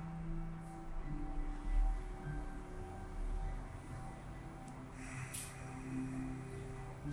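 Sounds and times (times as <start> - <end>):
quiet steady musical drone: 0.0 - 7.1
ujjayi breathing hissing through a constricted throat: 5.0 - 6.8.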